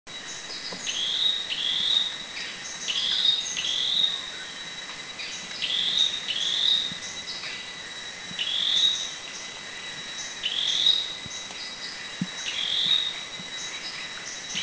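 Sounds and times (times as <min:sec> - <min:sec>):
Dark-necked Tailorbird calling in Thailand: 0:00.3 - 0:04.6, 0:05.2 - 0:07.7, 0:08.3 - 0:14.6.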